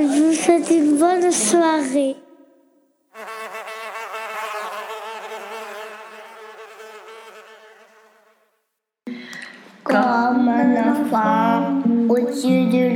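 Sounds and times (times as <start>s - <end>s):
speech: 0.6s - 2.3s, 9.9s - 12.9s
wasps buzzing: 3.2s - 8.6s.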